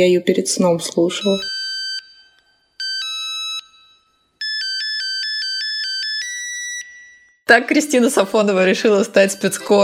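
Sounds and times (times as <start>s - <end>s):
speech: 0.0s - 1.6s, 7.5s - 9.8s
64-voice polyphonic mobile phone ringtone with beeping synth melody: 1.1s - 7.4s, 8.7s - 9.8s.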